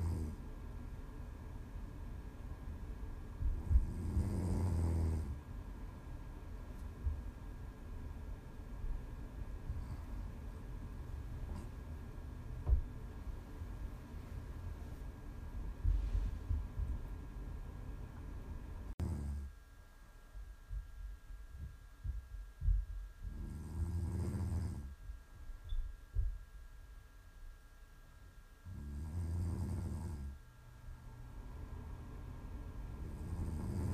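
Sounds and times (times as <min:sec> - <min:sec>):
person snoring with deep rumbling breaths: 0:00.0 - 0:00.4, 0:03.6 - 0:05.4, 0:19.0 - 0:19.5, 0:23.3 - 0:24.9, 0:28.7 - 0:30.4, 0:33.0 - 0:33.9
low steady hum: 0:00.0 - 0:33.9.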